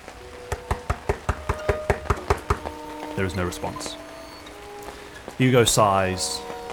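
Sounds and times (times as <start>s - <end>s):
firm knocks on a wooden townhouse front door: 0.5s - 2.8s
speech: 3.2s - 4.1s, 5.4s - 6.5s.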